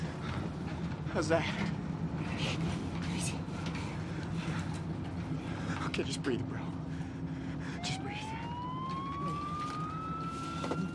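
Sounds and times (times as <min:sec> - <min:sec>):
low rumble of traffic and engine noise: 0:00.0 - 0:10.9
speech: 0:01.2 - 0:01.8, 0:06.0 - 0:06.9
emergency vehicle siren wailing: 0:07.7 - 0:10.9.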